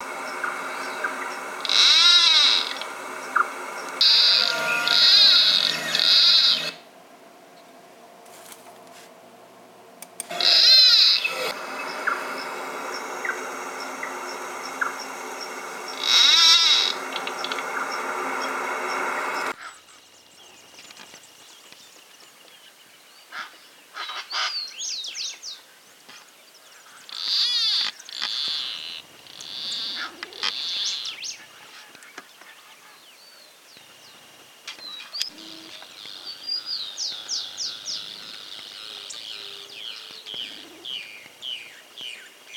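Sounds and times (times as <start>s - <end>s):
plantcutter bird calling: 0.0s - 6.9s, 10.1s - 19.8s, 27.0s - 33.0s, 34.7s - 42.5s.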